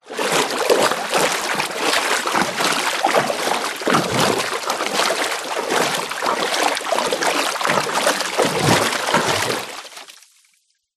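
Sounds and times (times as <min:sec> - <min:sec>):
water movements swishing 1 metre deep: 0:00.0 - 0:10.2.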